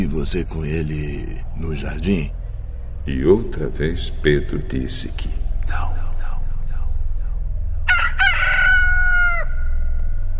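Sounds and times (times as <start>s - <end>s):
speech: 0.0s - 2.4s, 3.1s - 6.0s
low steady rumble: 0.0s - 10.3s
rooster crowing: 7.9s - 9.8s.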